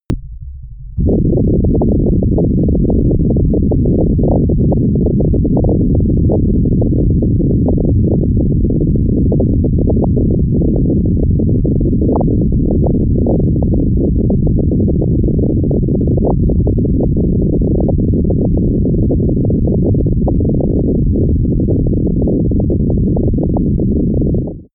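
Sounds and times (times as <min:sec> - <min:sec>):
science fiction overdrive rumble: 0:00.1 - 0:24.7.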